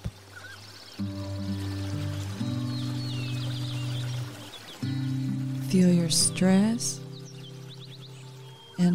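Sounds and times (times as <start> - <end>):
birds chirping and twittering: 0.0 - 8.9
rushing waterfall: 0.0 - 8.9
speech: 5.7 - 7.0.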